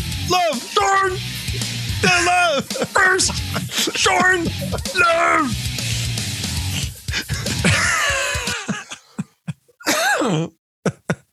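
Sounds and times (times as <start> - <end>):
speech: 0.3 - 1.6, 2.3 - 5.7
laughter: 0.6 - 11.3
person coughing: 2.0 - 5.9, 6.7 - 11.3
person groaning: 2.0 - 11.3
throat clearing: 2.1 - 5.0, 6.7 - 11.3.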